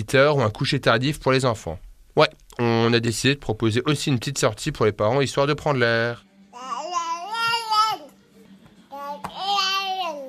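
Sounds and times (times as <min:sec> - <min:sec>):
speech: 0:00.0 - 0:06.8
baby girl babbling sing-song: 0:06.5 - 0:08.2, 0:08.9 - 0:10.2.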